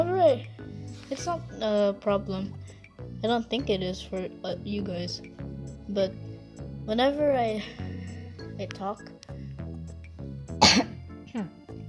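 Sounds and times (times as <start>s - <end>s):
speech: 0.0s - 6.3s, 6.9s - 7.8s, 8.6s - 9.2s, 11.3s - 11.6s
person coughing: 10.6s - 11.0s.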